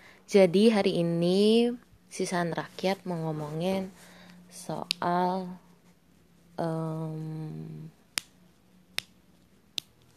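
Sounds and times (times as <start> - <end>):
speech: 0.3 - 5.6, 6.6 - 8.0
finger snaps: 8.1 - 9.1, 9.7 - 10.0.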